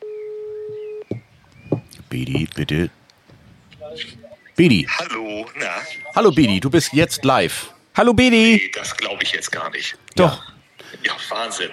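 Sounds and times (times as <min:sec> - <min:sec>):
telephone ringback tone on an outgoing call: 0:00.0 - 0:01.1
voices speaking over a faint phone line: 0:01.9 - 0:03.0, 0:03.7 - 0:11.7
speech: 0:02.1 - 0:03.0, 0:03.9 - 0:11.7.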